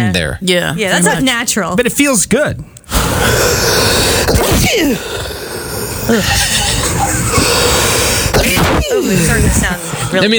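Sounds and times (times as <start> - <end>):
speech: 0.1 - 5.4, 6.1 - 10.3
noisy hiss: 2.8 - 10.3
person sneezing: 2.9 - 10.3.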